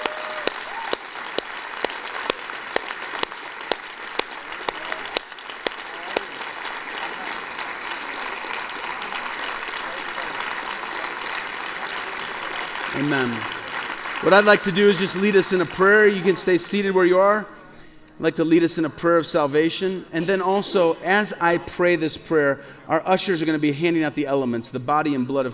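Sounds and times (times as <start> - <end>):
sharp individual claps: 0.0 - 14.3
church audience cheering: 0.0 - 16.6
large church audience applauding: 0.0 - 16.8
speech: 13.0 - 13.6, 14.2 - 17.6, 18.2 - 25.5.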